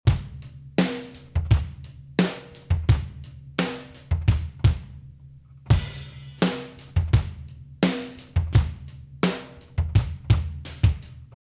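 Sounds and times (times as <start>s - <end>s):
drums: 0.0s - 11.4s.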